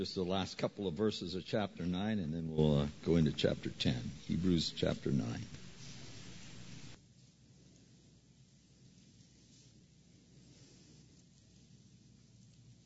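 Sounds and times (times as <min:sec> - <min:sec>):
speech: 0:00.0 - 0:05.6
light rain shower: 0:02.8 - 0:07.0.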